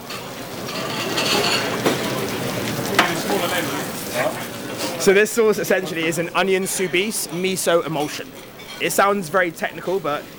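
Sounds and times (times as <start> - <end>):
potatoes deep-frying in a fryer: 0.0 - 10.3
sharp crackles of potatoes deep-frying: 0.3 - 6.6
speech: 5.0 - 10.3.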